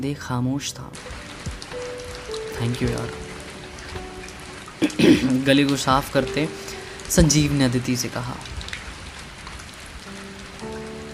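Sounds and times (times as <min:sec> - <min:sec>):
speech: 0:00.0 - 0:01.3, 0:02.6 - 0:03.2, 0:05.0 - 0:08.5
heavy rain pouring: 0:01.0 - 0:11.1.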